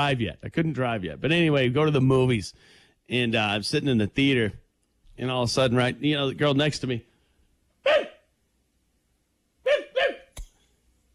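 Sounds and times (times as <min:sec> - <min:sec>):
speech: 0:00.0 - 0:04.6, 0:05.2 - 0:07.1
girl imitating a dog barking in a movie theater: 0:07.8 - 0:08.2, 0:09.6 - 0:10.3.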